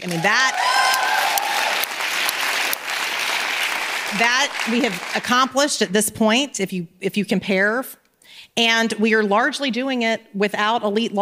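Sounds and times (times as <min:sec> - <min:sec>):
speech: 0:00.0 - 0:00.8, 0:04.1 - 0:11.2
audience applause at a talk: 0:00.0 - 0:05.4.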